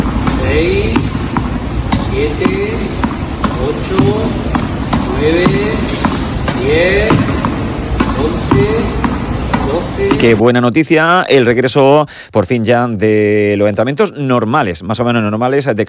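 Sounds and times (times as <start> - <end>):
tennis ball struck with the right hand in training: 0.0 - 10.4
constant dense noise: 0.0 - 15.8
speech: 0.5 - 1.0, 2.2 - 3.0, 3.6 - 4.6, 5.2 - 7.5, 8.2 - 9.0, 9.7 - 15.8.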